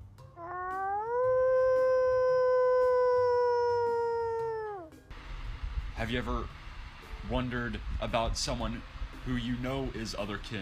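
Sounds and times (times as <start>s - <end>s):
person imitating a wolf howl: 0.4s - 5.0s
speech: 6.0s - 6.6s, 7.3s - 10.6s.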